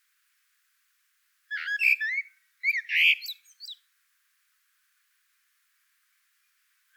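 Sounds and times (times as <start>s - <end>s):
Common blackbird Turdus merula song: 1.5s - 3.8s.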